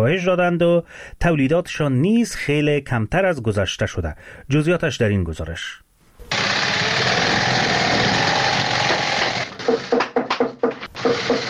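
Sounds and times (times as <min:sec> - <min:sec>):
speech: 0:00.0 - 0:05.8
shoe-sewing machines whirring in a shoe factory in Kabul: 0:06.3 - 0:10.0, 0:10.8 - 0:11.4.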